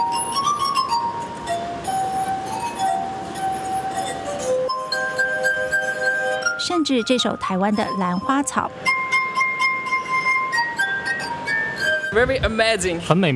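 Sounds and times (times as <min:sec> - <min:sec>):
glass harp played on rubbed water-tuned glasses: 0:00.0 - 0:13.0
speech: 0:06.7 - 0:09.0, 0:12.1 - 0:13.3.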